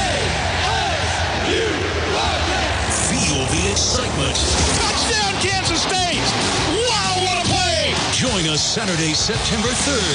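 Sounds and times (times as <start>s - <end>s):
football stadium crowd chanting: 0.0s - 8.5s
football stadium crowd roaring: 0.0s - 10.1s
speech: 3.1s - 6.7s, 8.3s - 10.1s.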